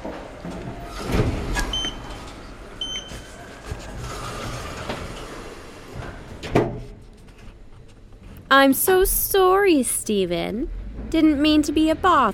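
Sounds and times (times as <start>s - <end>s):
elevator doors sliding: 0.0s - 7.1s
mechanical hum of the elevator running: 0.0s - 9.5s
speech: 0.4s - 1.4s, 8.6s - 12.3s.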